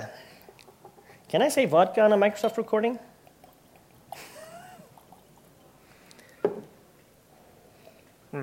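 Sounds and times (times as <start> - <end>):
water pouring into a glass: 0.5 - 6.7
speech: 1.3 - 3.1.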